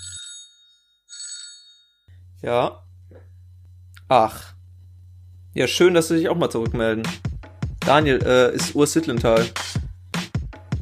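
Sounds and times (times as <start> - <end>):
telephone ringing with an incoming call: 0.0 - 2.1
speech: 2.4 - 3.2, 4.1 - 4.6, 5.6 - 7.3, 7.9 - 9.8.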